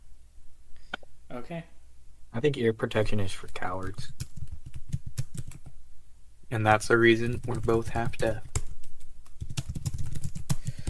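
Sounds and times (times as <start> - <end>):
speech: 1.3 - 4.3, 6.5 - 8.5
aggressive typing on a computer keyboard: 3.2 - 5.7, 7.2 - 10.8.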